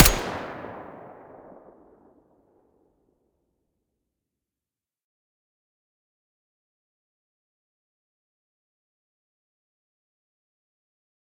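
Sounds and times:
weapon muzzle blast: 0.0s - 1.7s.

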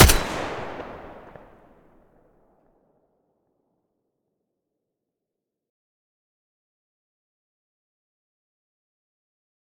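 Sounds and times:
AK12 rifle muzzle blast: 0.0s - 1.6s.

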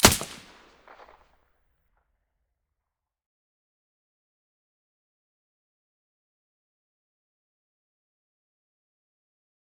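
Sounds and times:
silenced rifle gunshot in stereo: 0.0s - 1.2s.

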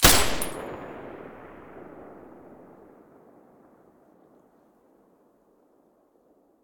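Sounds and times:
M249 machine gun firing with silencer: 0.0s - 2.6s.

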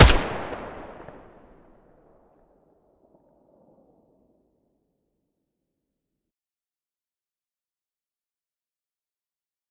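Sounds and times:
AK-12 rifle muzzle gunshot: 0.0s - 1.4s.

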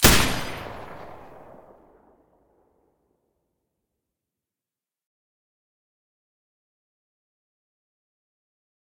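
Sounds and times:
M249 machine gun firing with a silencer: 0.0s - 1.8s.

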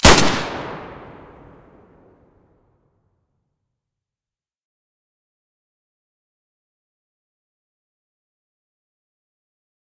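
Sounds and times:
M9A3 pistol muzzle blast: 0.0s - 1.8s.

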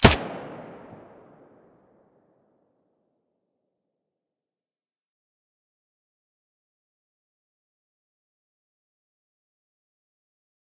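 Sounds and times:
MP5 submachine gun muzzle firing: 0.0s - 1.4s.

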